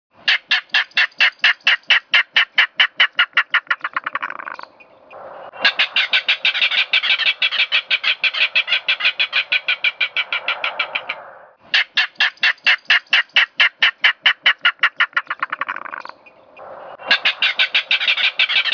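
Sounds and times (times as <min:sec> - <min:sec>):
Yuma clapper rail calling: 0:00.3 - 0:18.7.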